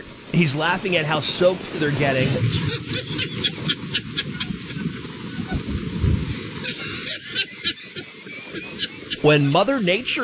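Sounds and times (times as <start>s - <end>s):
deep thunder rumbling: 0.0s - 7.0s
heavy rain on a golf course: 0.0s - 10.2s
speech: 0.4s - 4.3s, 9.2s - 10.2s.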